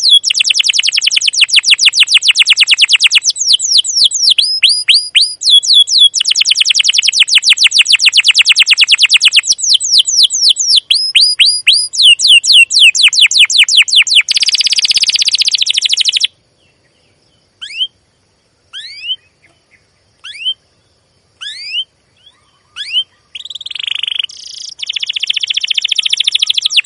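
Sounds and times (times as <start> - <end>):
canary song: 0.0 - 26.8.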